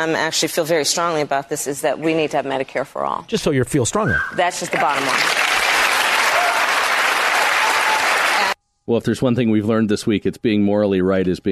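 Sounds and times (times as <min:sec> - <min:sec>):
speech: 0:00.0 - 0:05.4, 0:08.9 - 0:11.5
large audience clapping and cheering: 0:04.7 - 0:08.6.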